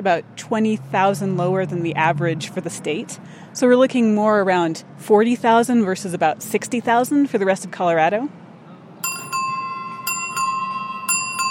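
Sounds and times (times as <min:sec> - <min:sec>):
speech: 0:00.0 - 0:08.4
low murmur of street noise: 0:00.0 - 0:11.4
rack of bicycle bells ringing in front of a bike store: 0:09.0 - 0:11.4.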